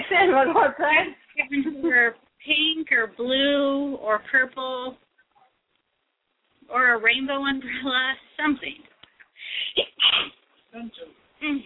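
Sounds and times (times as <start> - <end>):
speech: 0.2 - 5.0, 6.7 - 11.6
person sneezing: 9.6 - 10.4.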